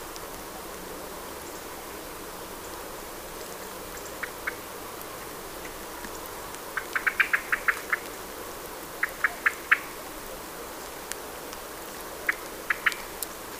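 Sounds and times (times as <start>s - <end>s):
background hiss: 0.0s - 13.5s
common blackbird clicking calls: 6.8s - 8.1s, 9.0s - 9.9s, 12.3s - 13.2s.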